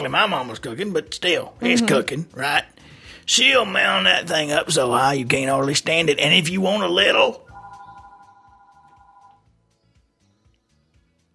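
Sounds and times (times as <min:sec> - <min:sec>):
speech: 0:00.0 - 0:07.4
telephone ringing with an electronic tone: 0:07.5 - 0:09.4.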